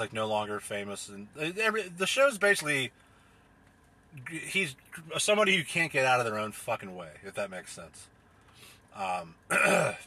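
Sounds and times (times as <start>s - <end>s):
speech: 0.0s - 3.0s, 4.1s - 8.2s, 8.9s - 10.0s
person clearing throat: 9.5s - 10.0s.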